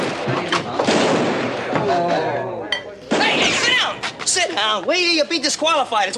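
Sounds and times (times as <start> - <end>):
gunshots during a shootout in a western saloon scene: 0.0 - 2.0, 3.1 - 4.0
speech: 4.6 - 6.1.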